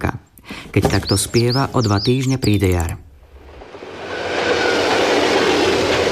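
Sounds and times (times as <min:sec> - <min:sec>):
speech: 0:00.8 - 0:03.0
express train thundering across a viaduct overhead: 0:03.6 - 0:06.1.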